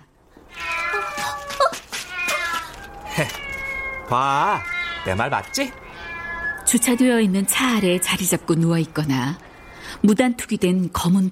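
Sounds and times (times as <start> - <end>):
stray cat meowing: 0.4 - 8.2
speech: 3.2 - 3.4, 4.1 - 5.8, 6.7 - 11.3.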